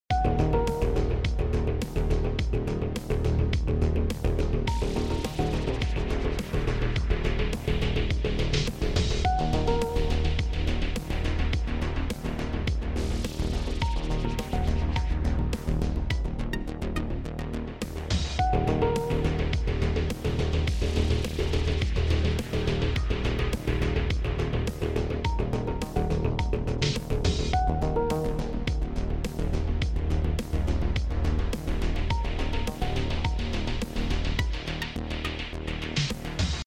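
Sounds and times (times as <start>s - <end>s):
music: 0.1s - 36.6s.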